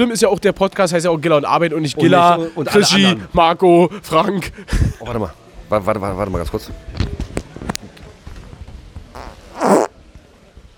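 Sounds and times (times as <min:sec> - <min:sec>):
speech: 0:00.0 - 0:07.2
soft clicks and microphone handling noises: 0:09.0 - 0:09.9
fart into a microphone: 0:09.1 - 0:10.0.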